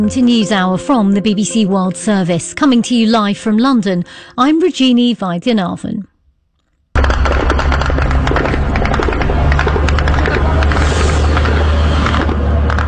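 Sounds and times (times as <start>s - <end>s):
speech: 0.0s - 6.1s
Ukrainian attack drones flying: 7.0s - 12.8s.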